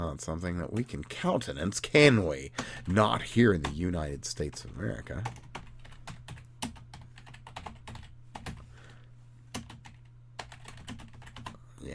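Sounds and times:
low steady hum: 0.0 - 11.9
speech: 0.2 - 5.6
typing on a computer keyboard: 5.2 - 8.6, 9.5 - 11.6.

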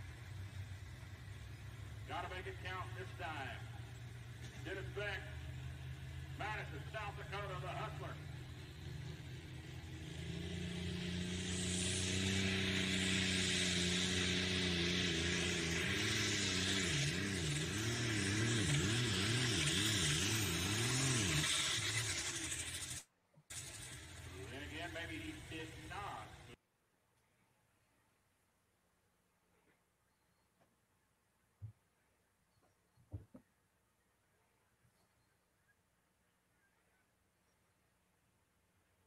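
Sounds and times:
tractor engine revving while making passes: 0.0 - 26.6.

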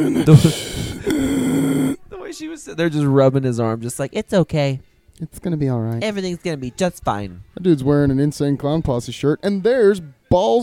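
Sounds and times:
speech: 0.0 - 1.4, 2.3 - 10.6
man's strained groan: 0.0 - 2.0
man breathing heavily and grunting: 0.0 - 2.1.

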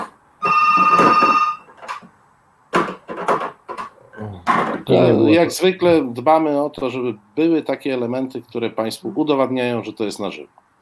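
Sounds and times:
phone ringtone ringing: 0.4 - 1.7
speech: 4.9 - 10.6.

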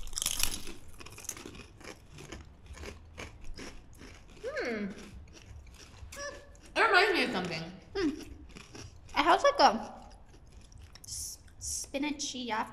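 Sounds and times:
crunching crispy vegan snack chips: 0.0 - 6.7, 8.2 - 9.3
speech: 9.6 - 9.9, 12.0 - 12.7.

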